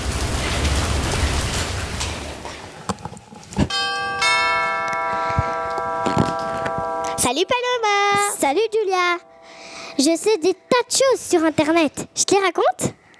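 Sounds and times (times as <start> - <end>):
steady rain hissing: 0.0 - 2.9
sustained bell-like chime ringing: 3.7 - 11.8
speech: 10.0 - 13.1.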